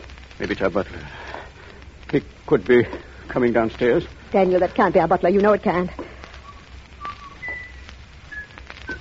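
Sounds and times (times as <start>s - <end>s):
speech: 0.4s - 1.2s, 2.1s - 6.1s
person whistling: 6.4s - 9.0s.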